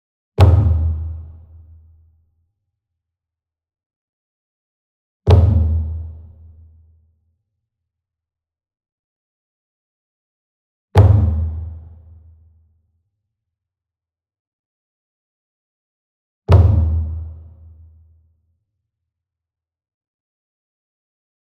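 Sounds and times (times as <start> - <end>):
single Kodo drum flam with soft beater, medium cinematic strike: 0.4 - 1.3, 5.3 - 6.2, 16.5 - 17.3.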